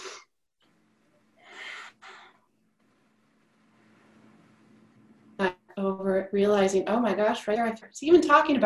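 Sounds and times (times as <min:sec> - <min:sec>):
low steady hum: 0:00.6 - 0:08.6
deep breath: 0:01.4 - 0:02.5
speech: 0:05.8 - 0:08.6.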